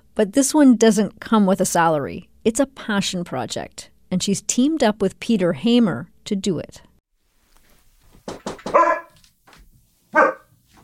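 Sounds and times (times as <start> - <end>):
speech: 0.2 - 6.9
Aussie Doodle dog barking at the door: 8.7 - 9.2, 10.1 - 10.8.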